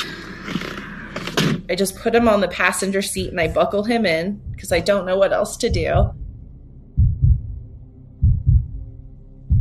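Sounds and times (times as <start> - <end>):
low humming background: 0.0 - 9.6
speech: 1.7 - 6.2
heartbeat sound effect with deep double thumps: 2.1 - 9.6.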